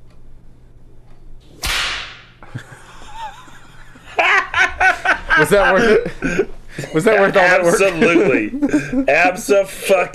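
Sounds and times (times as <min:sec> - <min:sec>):
whip crack: 0:01.5 - 0:02.4
people laughing: 0:02.4 - 0:09.9
speech: 0:05.4 - 0:10.1.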